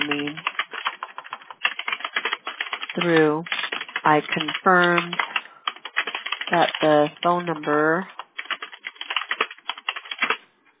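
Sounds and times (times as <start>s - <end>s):
rapid typing on a computer keyboard: 0.0s - 10.4s
speech: 3.0s - 5.3s, 6.5s - 8.2s.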